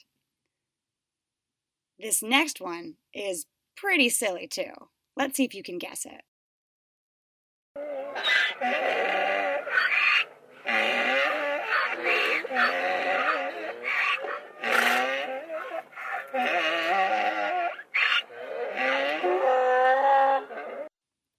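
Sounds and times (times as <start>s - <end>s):
speech: 2.0s - 6.3s, 7.8s - 10.0s
donkey braying: 7.8s - 20.9s.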